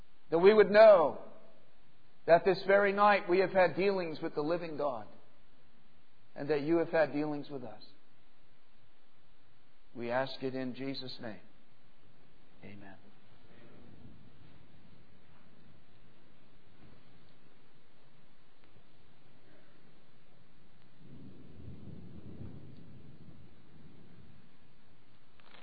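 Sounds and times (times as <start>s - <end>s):
speech: 0.3s - 1.2s, 2.3s - 5.2s, 6.4s - 8.0s, 10.0s - 11.5s, 12.6s - 13.0s
rain hissing steadily: 16.9s - 25.6s
deep rolls of thunder rumbling: 19.4s - 25.6s.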